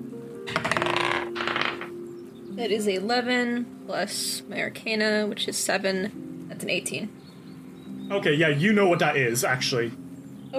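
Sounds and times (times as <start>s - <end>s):
real dice rattling and clattering across a table: 0.5s - 1.9s
speech: 2.6s - 7.2s, 8.1s - 10.5s.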